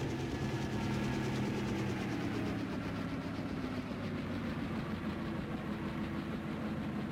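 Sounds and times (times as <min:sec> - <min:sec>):
helicopter descending vertically onto the stern deck of a ship: 0:00.0 - 0:07.1.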